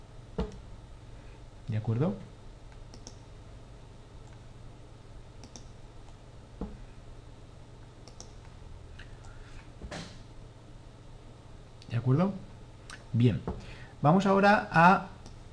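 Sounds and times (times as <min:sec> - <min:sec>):
steady low hum: 0:00.0 - 0:15.5
speech: 0:01.7 - 0:02.3, 0:13.2 - 0:15.1
computer mouse clicks: 0:02.7 - 0:03.2, 0:05.4 - 0:06.2, 0:08.0 - 0:08.5
computer delete key press: 0:02.9 - 0:03.2, 0:08.0 - 0:08.4.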